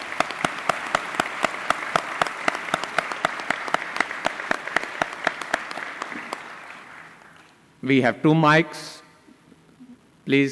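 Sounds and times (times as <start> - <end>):
audience applauding: 0.0 - 7.6
sharp claps: 0.0 - 7.6
speech: 7.8 - 9.0, 10.3 - 10.5.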